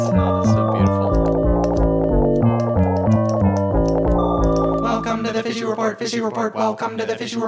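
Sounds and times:
upbeat intro jingle with bass line and percussion: 0.0 - 5.8
speech: 5.7 - 7.4.

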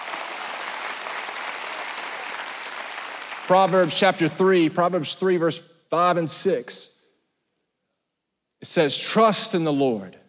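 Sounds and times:
audience applause: 0.0 - 4.0
speech: 3.5 - 7.0, 8.6 - 10.2.

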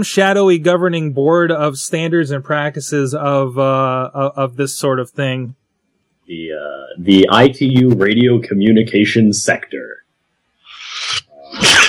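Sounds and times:
speech: 0.0 - 5.6, 6.3 - 10.0
sneeze: 11.0 - 11.8.

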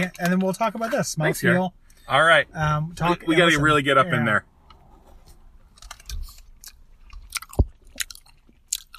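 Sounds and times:
speech: 0.0 - 4.5
wet chewing of a firm cola gummy candy: 5.7 - 8.9.

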